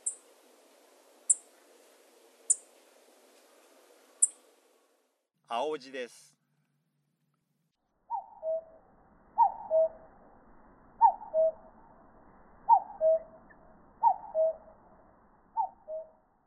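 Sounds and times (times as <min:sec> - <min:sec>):
speech: 0:05.5 - 0:06.4
common cuckoo calling two-note cuck-oo: 0:08.1 - 0:08.7, 0:09.4 - 0:10.0, 0:11.0 - 0:11.6, 0:12.7 - 0:13.4, 0:14.0 - 0:14.7, 0:15.6 - 0:16.1.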